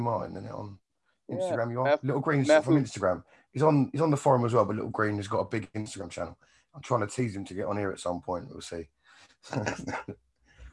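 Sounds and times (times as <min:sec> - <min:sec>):
speech: 0:00.0 - 0:10.2
laughter: 0:01.6 - 0:05.0, 0:09.5 - 0:10.1
loud harsh coughing: 0:09.6 - 0:10.1.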